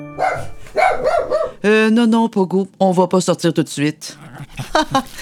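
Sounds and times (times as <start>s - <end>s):
dog barking: 0.1s - 1.7s
speech: 0.3s - 5.2s
laughter: 4.2s - 5.2s.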